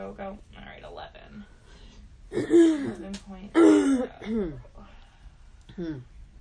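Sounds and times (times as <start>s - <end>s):
person clearing throat because of a tickle: 2.3s - 4.6s
speech: 2.5s - 4.7s, 5.8s - 6.2s.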